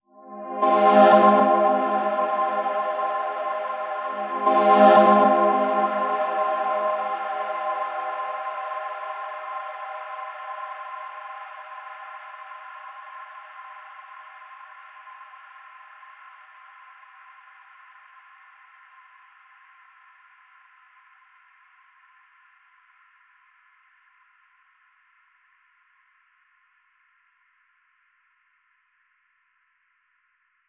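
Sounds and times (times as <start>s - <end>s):
cosmic synth pad: 0.1s - 14.4s.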